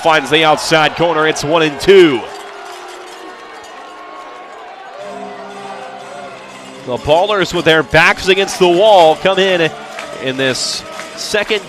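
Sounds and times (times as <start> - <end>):
speech: 0.0 - 2.4, 6.9 - 11.6
large baseball stadium crowd roaring and cheering: 0.0 - 11.6.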